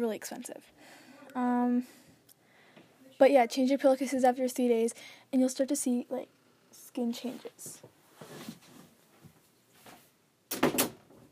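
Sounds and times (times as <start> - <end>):
speech: 0.0 - 2.0, 3.2 - 8.5
soft rustling and shuffling noises: 7.0 - 10.2
door pushed shut with a loud bang: 10.5 - 11.1.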